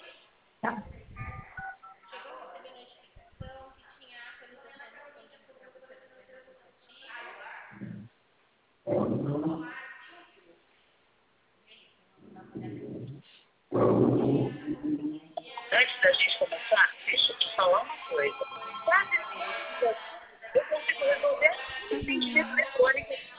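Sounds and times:
people talking over a telephone line on speakerphone: 0.6s - 8.1s, 13.8s - 23.3s
touch-tone keypad beeps from a telephone call on speakerphone: 1.6s - 2.1s.

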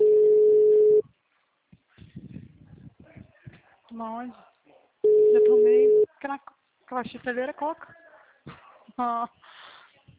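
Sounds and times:
phone line ringback tone during an outgoing call: 0.0s - 1.0s, 5.0s - 6.1s
faint voices: 1.7s - 6.9s, 7.6s - 10.1s
speech: 4.0s - 4.5s, 5.5s - 8.0s, 9.0s - 9.5s.

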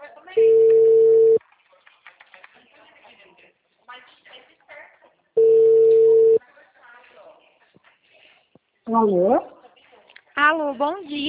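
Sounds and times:
outgoing telephone call ring tones: 0.4s - 1.4s, 5.4s - 6.4s
speech: 8.9s - 9.5s, 10.4s - 11.2s.

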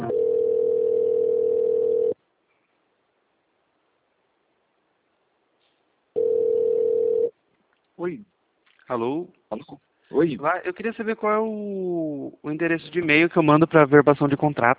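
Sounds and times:
telephone line tones while a call is transferred: 0.1s - 2.1s, 6.2s - 7.3s
speech: 9.0s - 9.3s, 10.2s - 14.7s.

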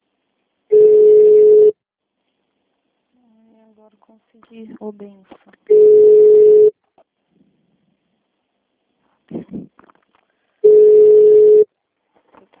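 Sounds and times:
low-pitched telephone dial tone beeps while placing a call: 0.7s - 1.8s, 5.7s - 6.7s, 10.6s - 11.7s
speech: 4.0s - 6.5s.

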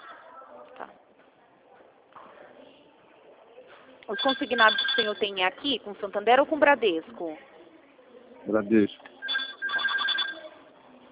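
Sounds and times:
telephone ringing with an incoming call, bright electronic ringtone: 4.1s - 5.4s, 9.2s - 10.6s
speech: 4.1s - 7.5s, 8.5s - 9.0s.

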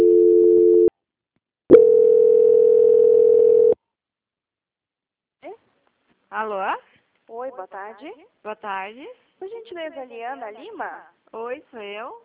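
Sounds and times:
steady dual-pitched telephone tone on a call-centre line during call transfer: 0.0s - 0.9s, 1.7s - 3.8s
speech: 6.4s - 12.2s.

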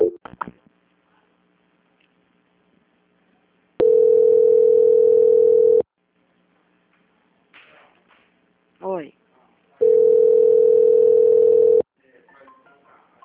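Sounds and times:
telephone tone during a call transfer: 3.8s - 5.8s, 9.8s - 11.8s.

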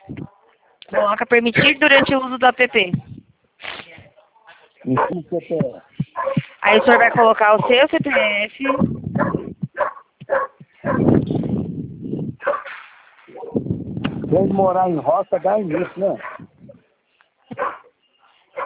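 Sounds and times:
speech: 0.9s - 3.1s, 4.8s - 5.9s, 6.6s - 9.3s, 14.3s - 16.3s
dog barking: 4.8s - 5.3s, 6.1s - 11.1s, 12.4s - 13.6s, 15.7s - 16.6s, 17.5s - 17.9s.

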